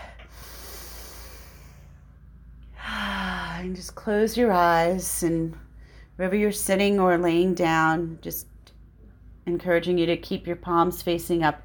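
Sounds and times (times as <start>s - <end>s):
slow deep inhale during a guided relaxation exercise: 0.0s - 3.7s
speech: 3.6s - 5.6s, 6.2s - 8.5s, 9.5s - 11.6s.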